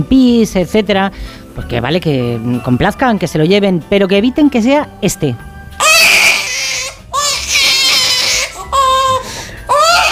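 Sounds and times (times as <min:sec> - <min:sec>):
speech: 0:00.0 - 0:05.5
toy baby doll crying with electronic-sounding wails: 0:05.8 - 0:10.1.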